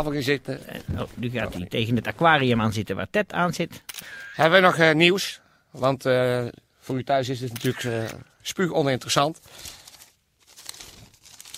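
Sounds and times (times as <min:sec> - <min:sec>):
speech: 0:00.0 - 0:09.8
paper being shuffled: 0:09.2 - 0:11.5.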